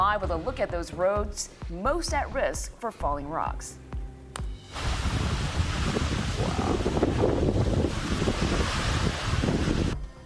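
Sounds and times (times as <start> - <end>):
speech: 0.2 - 3.8
strong gusty wind buffeting the microphone: 4.8 - 10.0.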